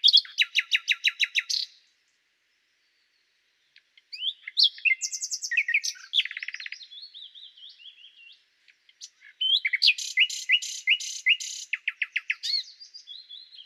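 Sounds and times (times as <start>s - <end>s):
common nightingale Luscinia megarhynchos singing: 0.0s - 13.6s.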